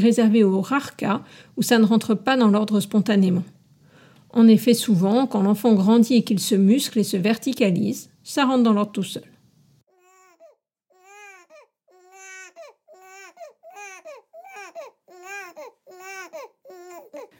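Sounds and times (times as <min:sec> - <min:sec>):
speech: 0:00.0 - 0:03.6, 0:04.3 - 0:09.3
baby crying: 0:09.9 - 0:17.3.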